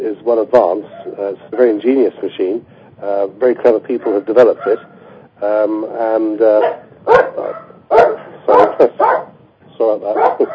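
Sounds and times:
speech: 0.2s - 7.6s, 8.8s - 9.2s, 9.8s - 10.5s
dog barking loudly with yips: 0.9s - 1.2s, 4.6s - 5.0s, 6.6s - 9.4s, 10.2s - 10.5s.

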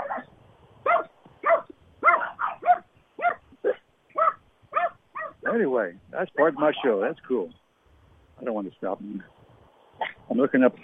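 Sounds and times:
dogs barking at each other along a backyard fence: 0.0s - 5.7s, 6.3s - 7.0s
speech: 5.5s - 7.6s, 8.4s - 9.4s, 10.3s - 10.8s.

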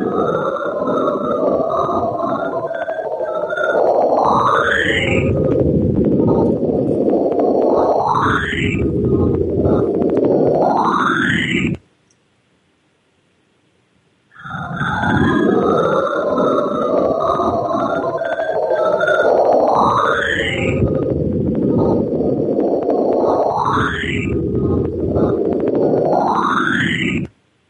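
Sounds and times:
space radio signal whistles from meteorite ice chunks: 0.0s - 11.8s, 14.4s - 27.3s
dense rumbling radio static roar: 0.0s - 27.6s.

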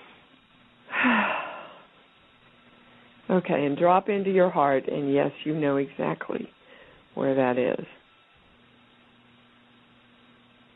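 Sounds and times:
deep breath: 0.9s - 2.0s, 6.6s - 7.1s
speech: 3.3s - 6.6s, 7.2s - 8.0s.

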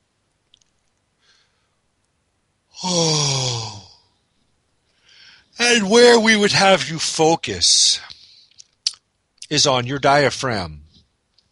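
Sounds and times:
person exhaling deeply during a guided breathing exercise: 2.8s - 4.0s, 5.0s - 5.5s
speech: 5.7s - 8.1s, 9.5s - 10.8s.

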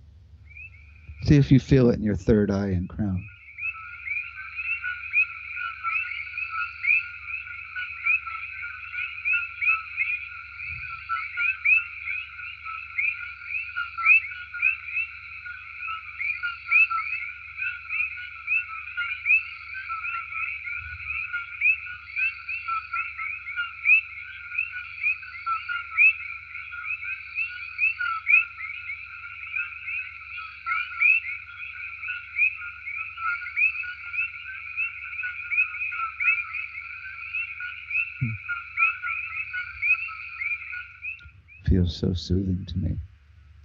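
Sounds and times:
faint low rumble: 0.0s - 3.3s, 41.2s - 43.6s
chorus of coqui frogs: 0.0s - 42.9s
speech: 1.2s - 3.3s, 42.0s - 43.1s.

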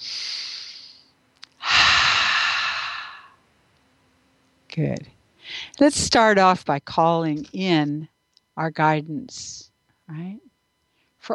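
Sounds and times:
deep slow breaths: 0.0s - 3.4s
speech: 4.8s - 5.2s, 5.8s - 10.5s.

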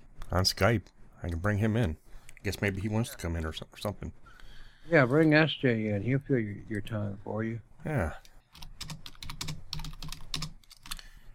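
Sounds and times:
speech: 0.3s - 4.2s, 4.8s - 8.3s
typing on a computer keyboard: 8.5s - 11.0s.

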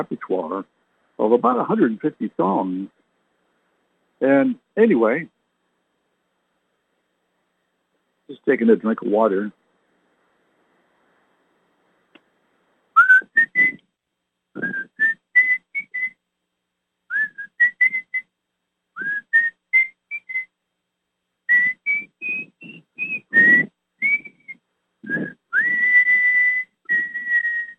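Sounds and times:
speech: 0.0s - 3.0s, 4.2s - 5.4s, 8.3s - 9.6s
person whistling a little tune: 13.0s - 13.8s, 14.6s - 16.2s, 17.1s - 18.2s, 19.0s - 20.5s, 21.5s - 27.7s.

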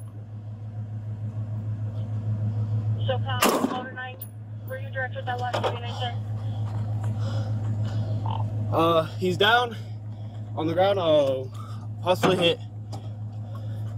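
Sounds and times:
steady low engine hum: 0.0s - 13.9s
speech: 3.1s - 3.9s, 5.0s - 6.4s, 7.2s - 9.9s, 10.6s - 12.6s
police gunshot during armed confrontation in Truth or Consequences New Mexico: 3.4s - 3.8s.

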